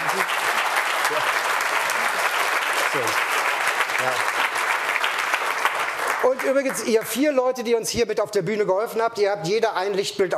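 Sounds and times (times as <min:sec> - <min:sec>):
audience applause at a stage presentation at a trade fair: 0:00.0 - 0:07.2
speech: 0:03.0 - 0:03.2, 0:06.4 - 0:10.3.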